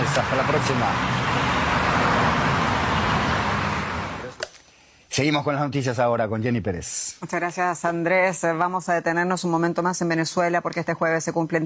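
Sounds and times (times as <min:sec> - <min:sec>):
dense steady roar of busy city street traffic with engines and tires: 0:00.0 - 0:04.4
speech: 0:00.2 - 0:01.6, 0:05.2 - 0:11.6.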